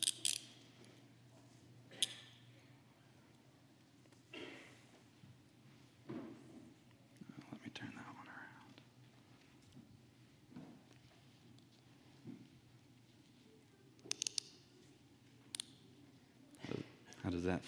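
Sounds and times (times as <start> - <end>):
metal handcuffs ratcheting and clicking shut on wrists: 0.0 - 0.6, 14.0 - 14.6
low hum in a quiet room: 0.0 - 17.6.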